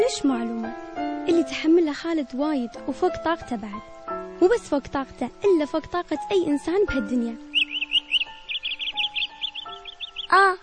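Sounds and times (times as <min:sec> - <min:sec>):
speech: 0:00.1 - 0:07.5, 0:10.3 - 0:10.6
bird chirping: 0:06.8 - 0:10.6.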